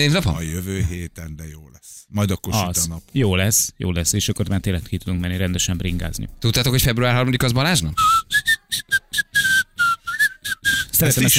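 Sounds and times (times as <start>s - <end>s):
speech: 0.0s - 9.2s, 11.0s - 11.3s
person whistling a tune in short choppy notes: 7.9s - 11.3s.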